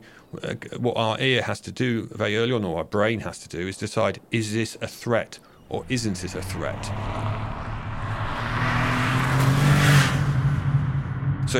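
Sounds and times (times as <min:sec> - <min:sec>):
speech: 0:00.3 - 0:07.3
car engine humming as the car drives past: 0:05.7 - 0:11.5
tire and wind noise of a passing car: 0:05.8 - 0:11.5.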